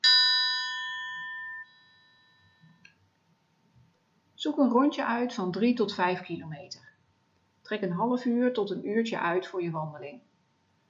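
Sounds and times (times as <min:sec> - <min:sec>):
single clear chime ringing: 0:00.0 - 0:02.7
speech: 0:04.4 - 0:06.9, 0:07.7 - 0:10.3.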